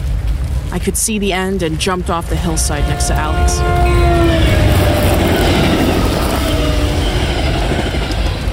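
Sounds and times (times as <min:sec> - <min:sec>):
black passenger train roaring out of a narrow tunnel: 0:00.6 - 0:08.5
speech: 0:00.7 - 0:04.6
faint metallic squealing tones: 0:02.4 - 0:08.5.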